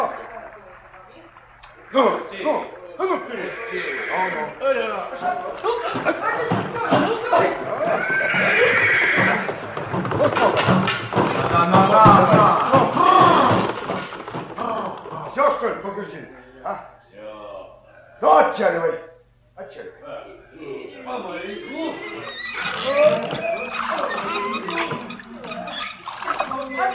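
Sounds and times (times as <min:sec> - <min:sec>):
horse hoof clops: 0:00.1 - 0:15.8, 0:21.7 - 0:26.9
people chuckling: 0:01.6 - 0:10.7, 0:21.5 - 0:26.9
horse neighing and whinnying: 0:01.7 - 0:11.2, 0:21.4 - 0:26.9
speech: 0:01.9 - 0:09.5, 0:10.2 - 0:13.0, 0:15.6 - 0:16.9, 0:18.2 - 0:19.0.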